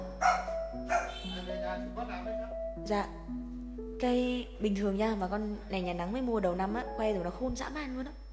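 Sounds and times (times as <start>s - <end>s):
dog barking: 0.2s - 1.3s
speech: 1.8s - 3.4s, 4.0s - 8.2s.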